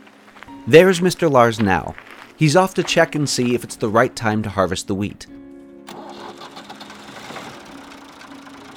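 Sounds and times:
speech: 0.6 - 6.0
tractor engine running: 5.9 - 8.7.

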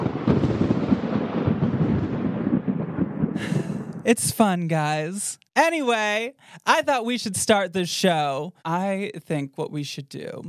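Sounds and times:
thunder rumbling with crackling texture: 0.0 - 5.2
speech: 4.0 - 10.4.

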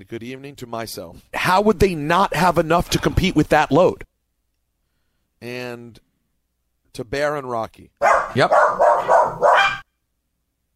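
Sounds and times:
speech: 0.0 - 4.1, 5.4 - 6.1, 7.0 - 9.4
dog barking: 8.0 - 9.9.

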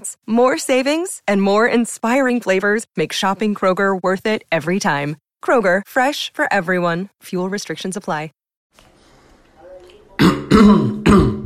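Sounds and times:
speech: 0.0 - 8.9, 10.6 - 11.4
person clearing throat: 10.2 - 11.4.

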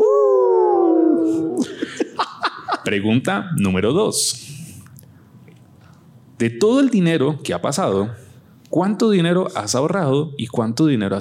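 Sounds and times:
audience members howling like wolves together: 0.0 - 1.7
laughter: 1.6 - 3.0
speech: 2.8 - 4.6, 6.4 - 11.2.

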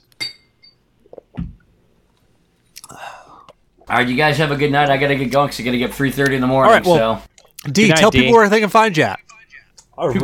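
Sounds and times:
glasses clinking in a toast: 0.2 - 0.8
speech: 3.9 - 9.3, 10.0 - 10.2.

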